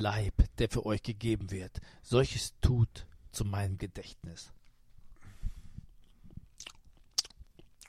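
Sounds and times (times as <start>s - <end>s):
speech: 0.0s - 4.6s
noisy chewing of bread with mouth open: 5.8s - 7.8s
wet lip-smacks while eating bread: 5.8s - 7.8s.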